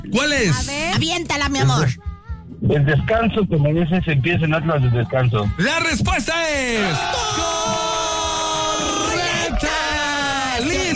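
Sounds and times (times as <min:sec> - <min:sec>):
speech: 0:00.0 - 0:07.9
person shouting in celebration: 0:06.8 - 0:10.9.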